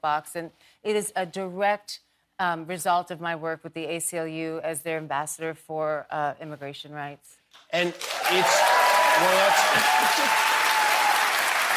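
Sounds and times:
speech: 0.0 - 10.5
audience applause: 7.8 - 11.7.

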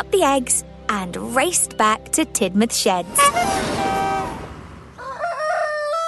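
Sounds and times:
speech: 0.0 - 3.9
rooster crowing cock-a-doodle-doo: 4.9 - 6.0.

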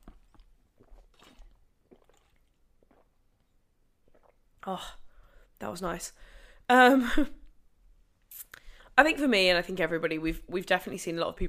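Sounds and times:
swallowing: 0.0 - 5.1
sipping water from a glass: 0.0 - 5.5
speech: 4.7 - 5.0, 5.6 - 7.4, 8.4 - 11.4.

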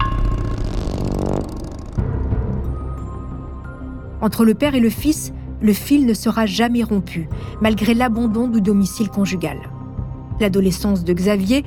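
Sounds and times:
blue Triumph motorcycle engine revving then idling: 0.0 - 2.7
speech: 4.2 - 9.7, 10.4 - 11.6.

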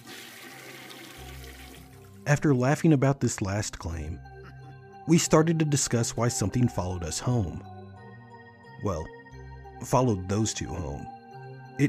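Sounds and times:
toilet flushing: 0.0 - 2.2
speech: 2.3 - 4.3, 5.1 - 7.8, 8.8 - 9.2, 9.8 - 11.2.

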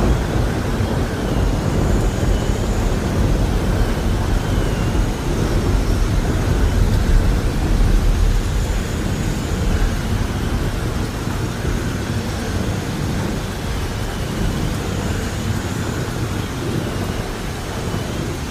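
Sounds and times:
heavy low rumble of thunder or wind: 0.0 - 18.3
steady rain: 0.0 - 18.4.

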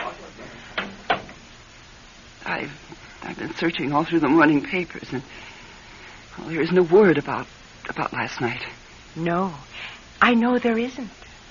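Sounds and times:
office door closing and latching: 0.8 - 1.4
speech: 2.5 - 5.5, 6.4 - 11.2.

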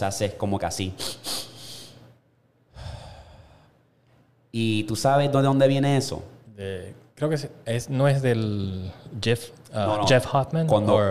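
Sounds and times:
speech: 0.0 - 1.4, 4.6 - 11.0
quick sharp sniffs in through the nose: 1.0 - 2.0.

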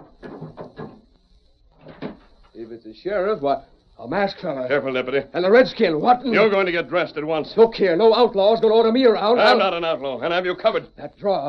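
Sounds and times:
wooden door being opened with knocks and rattles: 0.1 - 1.0
speech: 2.6 - 11.4.

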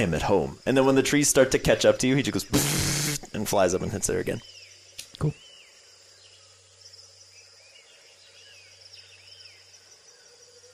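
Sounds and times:
speech: 0.0 - 4.6, 5.2 - 5.4
steady insect chirring in a forest: 0.0 - 10.7
faint bird chirps: 3.6 - 10.7.

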